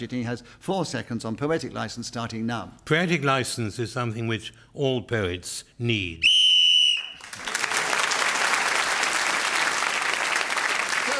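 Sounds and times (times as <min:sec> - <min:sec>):
speech: 0:00.0 - 0:06.4
short shrill whistle blast blown to end the round: 0:06.2 - 0:07.2
loud sustained audience applause: 0:06.9 - 0:11.1.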